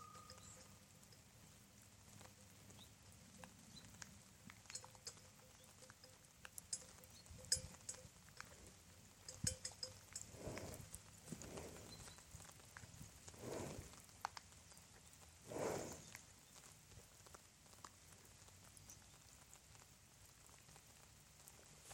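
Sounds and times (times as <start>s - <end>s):
cow in summer rain: 0.0s - 1.4s, 2.0s - 16.7s
summer rain: 0.0s - 21.9s.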